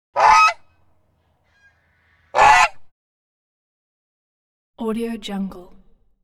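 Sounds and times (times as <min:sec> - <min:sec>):
geese honking: 0:00.2 - 0:02.9.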